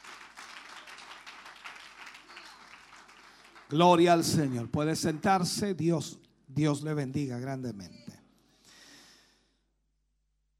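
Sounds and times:
church congregation applauding in praise during a worship service: 0.0s - 6.0s
speech: 3.7s - 8.1s.

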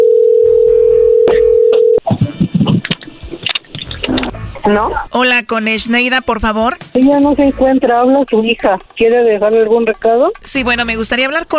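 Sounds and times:
telephone dial tone: 0.0s - 2.0s
clicks and sounds of a telephone call being dialed: 2.6s - 4.4s
speech: 4.7s - 11.5s.

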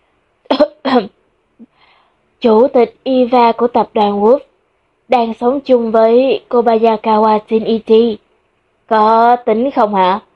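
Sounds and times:
person coughing: 0.5s - 1.1s
speech: 1.0s - 1.7s, 2.4s - 4.5s, 5.1s - 8.2s, 8.9s - 10.3s.

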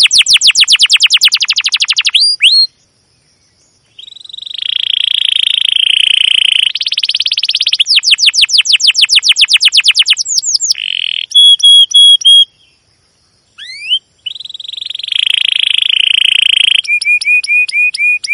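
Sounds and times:
domestic canary singing a long energetic chirping song: 0.0s - 2.8s, 3.9s - 12.8s, 13.6s - 18.3s.

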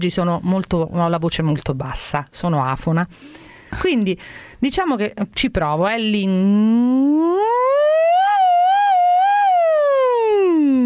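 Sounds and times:
speech: 0.0s - 8.1s
voice imitating a siren on a hummed N sound as a vocal exercise: 6.4s - 10.8s.

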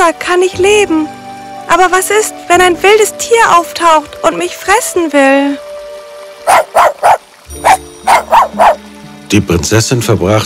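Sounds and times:
speech: 0.1s - 5.7s, 6.4s - 7.0s, 9.3s - 10.4s
small dog barking in short sharp yips: 6.4s - 8.8s.

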